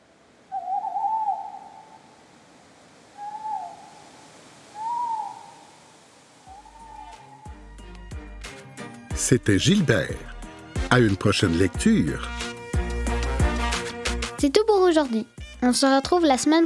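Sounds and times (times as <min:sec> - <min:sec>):
hiss: 0:00.0 - 0:16.6
barred owl hooting: 0:00.5 - 0:02.2, 0:03.1 - 0:07.7
speech: 0:09.2 - 0:10.3, 0:10.9 - 0:12.4, 0:14.4 - 0:16.6.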